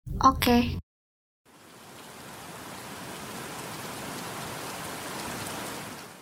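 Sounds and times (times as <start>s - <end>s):
speech: 0.2s - 0.8s
steady rain spattering on surfaces: 1.5s - 6.2s.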